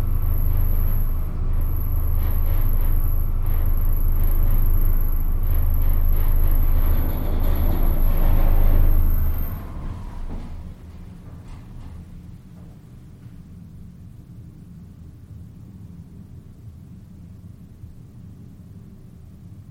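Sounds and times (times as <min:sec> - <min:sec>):
freight elevator running with a deep rumble and high whine: 0:00.0 - 0:13.6
quieter low hum: 0:00.0 - 0:19.4
faint clunks: 0:05.8 - 0:12.8.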